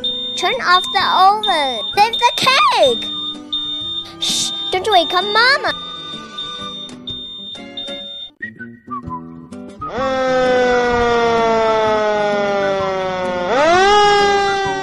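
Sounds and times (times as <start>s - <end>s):
fire engine siren wailing: 0.0s - 8.3s, 9.9s - 14.8s
short tonal notes: 0.0s - 8.3s
speech: 0.4s - 3.4s, 4.2s - 5.9s.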